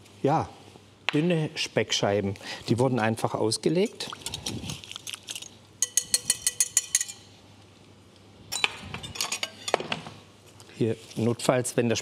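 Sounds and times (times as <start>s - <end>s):
speech: 0.2s - 4.7s, 10.8s - 12.0s
spoon clinking against a bowl while stirring olive oil and sea salt marinade: 5.8s - 7.3s.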